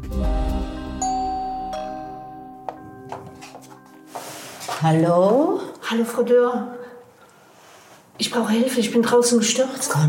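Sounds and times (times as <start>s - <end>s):
doorbell chiming: 0.4s - 5.5s
speech: 4.8s - 6.8s, 8.2s - 10.0s.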